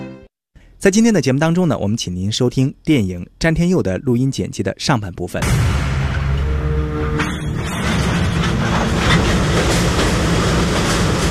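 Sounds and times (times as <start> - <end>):
speech: 0.8 - 5.9
train running on the Beijing–Zhangjiakou railway: 5.8 - 11.2
train wheels clickety-clacking on rails: 7.2 - 11.2.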